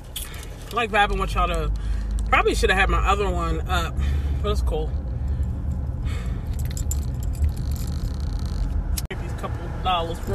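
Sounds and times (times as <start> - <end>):
car engine idling: 0.0 - 10.3
speech: 0.7 - 5.0, 9.8 - 10.3
light metallic jingling: 5.2 - 8.4, 10.0 - 10.3.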